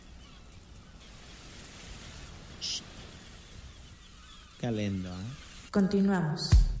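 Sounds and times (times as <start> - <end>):
sea spray hissing: 0.0 - 5.8
sea waves rushing: 1.0 - 4.6
speech: 4.6 - 6.7.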